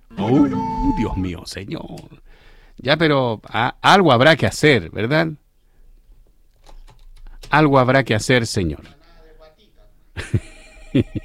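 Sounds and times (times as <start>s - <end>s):
telephone ringing: 0.1s - 1.3s
speech: 0.3s - 5.4s, 7.5s - 9.0s, 10.2s - 11.2s.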